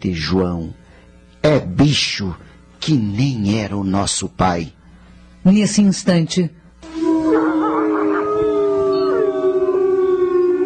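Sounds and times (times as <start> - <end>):
speech: 0.0 - 0.8, 1.4 - 4.8, 5.4 - 6.6
wolf howling: 6.8 - 10.6.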